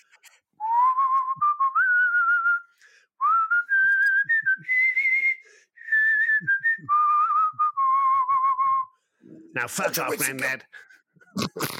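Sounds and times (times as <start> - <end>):
person whistling a song melody: 0.6 - 9.0
speech: 9.6 - 11.7.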